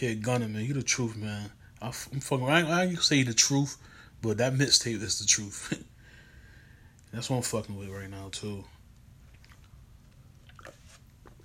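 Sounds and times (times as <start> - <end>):
speech: 0.0 - 5.9, 7.1 - 8.8
person sipping a drink: 9.2 - 11.4
wet mouth and swallowing sounds: 9.2 - 11.4.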